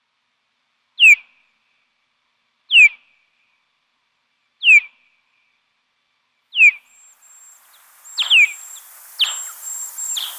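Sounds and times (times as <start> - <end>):
bat calls with falling sweeps at night: 6.9 - 10.3.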